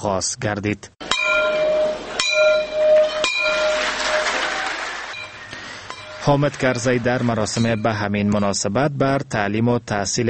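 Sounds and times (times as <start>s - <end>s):
speech: 0.0s - 1.0s, 6.3s - 10.2s
noise: 0.0s - 10.2s
school bell rung at a ceremony opening the school year in Afghanistan: 1.0s - 8.1s.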